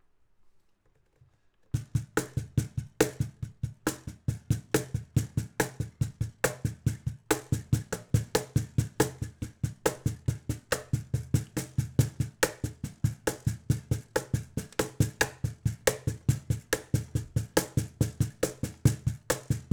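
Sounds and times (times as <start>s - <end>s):
cajon: 1.8s - 19.7s.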